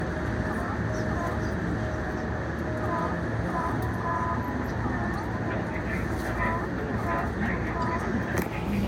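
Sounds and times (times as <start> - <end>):
train sounds on the JR Chuo Line west of Nakano: 0.0 - 8.8.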